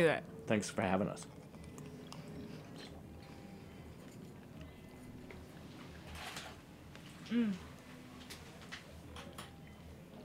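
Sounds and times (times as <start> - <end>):
speech: 0.0 - 1.4, 7.3 - 7.7
wet chewing of a raw oyster with a pearl: 1.2 - 6.1.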